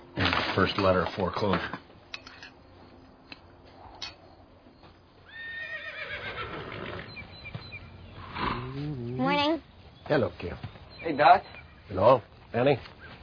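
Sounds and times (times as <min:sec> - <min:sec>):
speech: 0:00.6 - 0:01.8, 0:10.2 - 0:13.0
horse whinnying in a stable: 0:05.2 - 0:07.2, 0:08.2 - 0:09.1.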